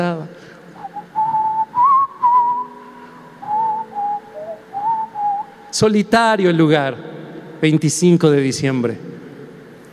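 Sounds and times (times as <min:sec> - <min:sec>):
person whistling a slow song melody: 0:00.8 - 0:05.6
speech: 0:05.8 - 0:09.2.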